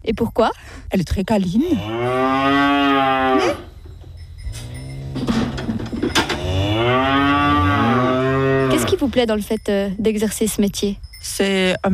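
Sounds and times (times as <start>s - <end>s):
speech: 0.1s - 3.7s, 9.0s - 11.9s
cow mooing on a dairy farm: 1.8s - 3.7s, 6.2s - 9.0s
faint clanking farm noises: 3.6s - 6.8s.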